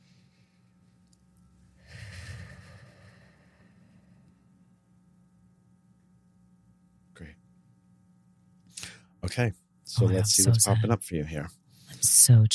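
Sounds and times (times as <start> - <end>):
deep breath in through the nose and out through the mouth as a breathing exercise: 1.8 - 4.3
speech: 9.2 - 11.6, 12.2 - 12.5.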